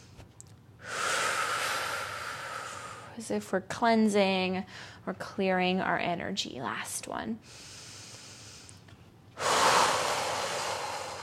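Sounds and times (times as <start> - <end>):
breath exhaled during a breathing exercise: 0.8 - 3.3, 7.4 - 8.8, 9.4 - 11.2
speech: 3.2 - 7.8.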